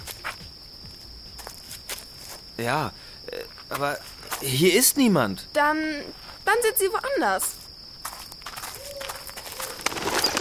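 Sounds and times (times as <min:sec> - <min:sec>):
speech: 0:02.6 - 0:07.6
bat wings fluttering: 0:08.6 - 0:10.4.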